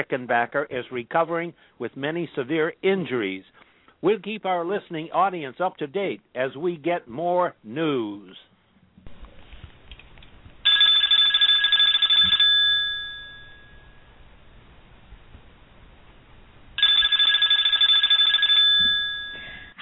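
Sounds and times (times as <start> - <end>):
speech: 0.0 - 8.5
switchboard telephone bell ringing: 10.6 - 14.1, 16.8 - 19.8.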